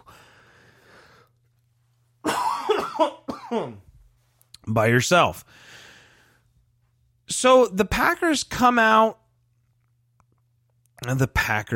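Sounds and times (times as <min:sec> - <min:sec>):
person coughing harshly with a raspy voiced edge: 0:02.2 - 0:03.9
speech: 0:02.9 - 0:03.8, 0:04.7 - 0:05.8, 0:07.3 - 0:09.2, 0:11.0 - 0:11.7.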